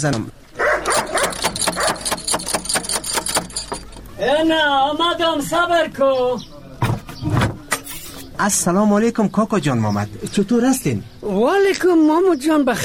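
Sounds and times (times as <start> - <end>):
speech: 0.0 - 1.0, 4.2 - 6.5, 8.4 - 12.8
dog barking: 0.6 - 2.1
metallic clicks clattering: 0.8 - 4.2.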